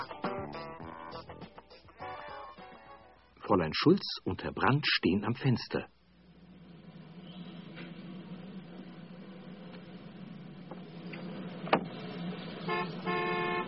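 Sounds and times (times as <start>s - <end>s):
street traffic in Germany: 3.1s - 13.6s
speech: 3.5s - 6.0s
cars passing: 6.1s - 13.6s
car horns honking: 12.4s - 13.6s.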